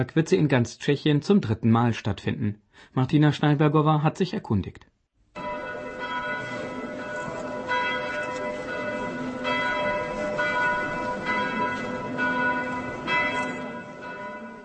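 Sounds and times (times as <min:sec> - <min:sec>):
speech: 0:00.0 - 0:04.9
church bells pealing at the Night of Churches in the Czech Republic: 0:05.4 - 0:14.6.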